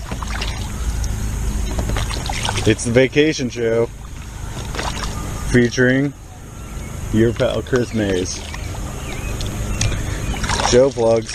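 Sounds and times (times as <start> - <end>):
faint kayak paddle splashes: 0.0 - 5.9, 7.2 - 11.3
kayak moving across a lake, water and hull noise: 0.0 - 11.3
speech: 2.6 - 4.0, 5.5 - 6.2, 7.1 - 8.5, 10.7 - 11.3.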